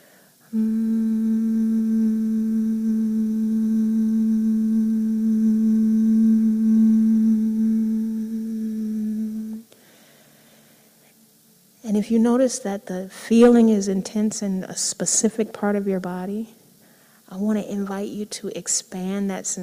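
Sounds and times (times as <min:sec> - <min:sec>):
speech: 0:00.5 - 0:00.9, 0:12.0 - 0:16.6, 0:17.3 - 0:19.6
person humming a steady low note: 0:00.5 - 0:09.7.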